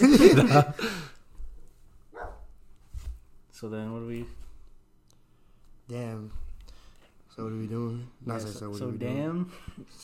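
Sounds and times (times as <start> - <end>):
speech: 0.2 - 1.1, 3.6 - 4.4, 5.9 - 6.4, 7.4 - 10.0
dog barking: 2.1 - 2.5.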